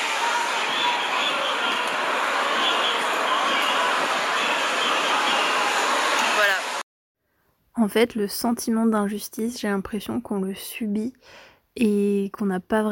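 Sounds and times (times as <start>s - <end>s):
huge street protest march passing below the speaker's home: 0.0s - 6.8s
speech: 7.8s - 12.9s.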